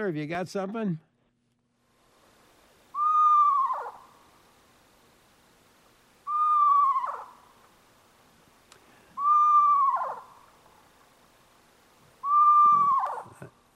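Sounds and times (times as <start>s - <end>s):
speech: 0.0s - 1.1s
Eastern Screech-Owl whinny played back from a recording: 2.9s - 4.1s, 6.3s - 7.4s, 9.2s - 10.4s, 12.2s - 13.3s.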